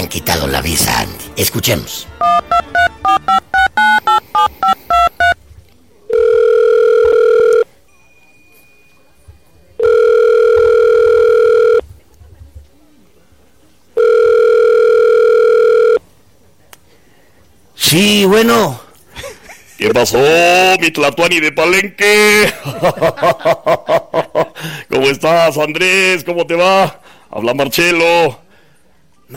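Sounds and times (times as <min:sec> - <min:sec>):
speech: 0:00.0 - 0:02.4, 0:17.9 - 0:18.8, 0:19.8 - 0:24.0, 0:25.0 - 0:28.4
telephone ringback tones: 0:02.2 - 0:05.4, 0:06.1 - 0:08.9, 0:09.8 - 0:11.8, 0:14.0 - 0:16.0
telephone touch-tone dialing: 0:02.2 - 0:05.4, 0:06.1 - 0:07.6, 0:09.8 - 0:11.8, 0:14.0 - 0:16.0
laughter: 0:19.1 - 0:20.0, 0:22.4 - 0:24.6.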